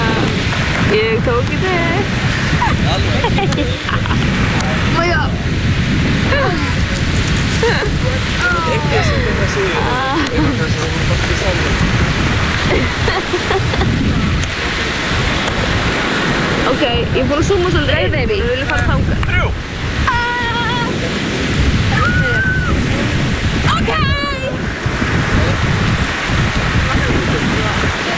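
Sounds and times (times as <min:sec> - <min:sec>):
sea waves surging as people run into the sea: 0:00.0 - 0:28.1
speech: 0:00.9 - 0:05.6, 0:07.6 - 0:15.1, 0:16.7 - 0:20.2
laughter: 0:02.3 - 0:05.0, 0:06.2 - 0:11.8, 0:12.6 - 0:14.6
people shouting: 0:07.6 - 0:10.3, 0:19.3 - 0:21.2, 0:21.8 - 0:23.0, 0:23.6 - 0:24.7.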